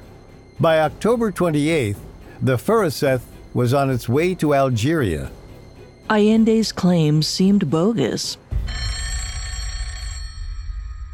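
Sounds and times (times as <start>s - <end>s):
speech: 0.6s - 5.4s, 6.1s - 9.0s
telephone bell ringing: 8.5s - 11.1s.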